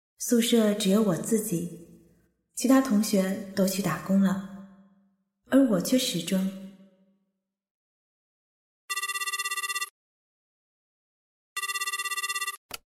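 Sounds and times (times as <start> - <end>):
speech: 0.2 - 1.8, 2.6 - 4.5, 5.5 - 6.6
telephone ringing with trilling bell tone: 8.9 - 9.9, 11.6 - 12.6.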